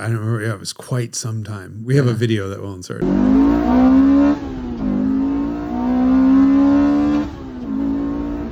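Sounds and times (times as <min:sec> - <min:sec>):
speech: 0:00.0 - 0:04.5
four-cylinder car engine revving to redline: 0:03.0 - 0:08.5.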